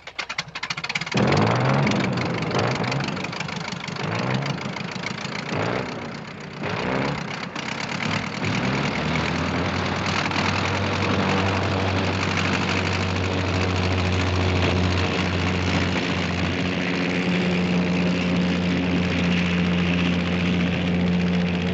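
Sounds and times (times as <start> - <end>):
World War I Sopwith Camel propeller biplane engine starting and flying: 0.0 - 21.7.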